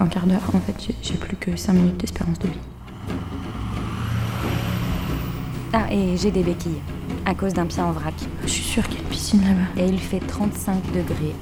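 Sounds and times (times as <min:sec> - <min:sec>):
speech: 0:00.0 - 0:03.3, 0:05.7 - 0:11.3
traffic rumbling past on an expressway: 0:00.0 - 0:10.4
faint rising whine over expressway traffic: 0:02.3 - 0:09.8.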